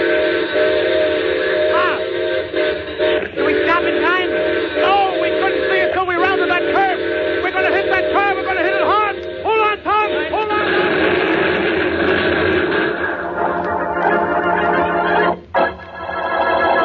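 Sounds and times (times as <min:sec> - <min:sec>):
steam train whistle blowing: 0:00.0 - 0:13.0
rumbling rail noise: 0:00.0 - 0:16.8.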